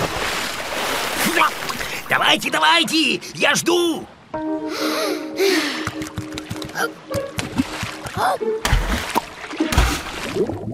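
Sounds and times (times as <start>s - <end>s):
water splashing as kittens dive into the sea: 0.0s - 2.4s, 5.9s - 10.7s
speech: 1.3s - 5.7s, 8.2s - 8.8s.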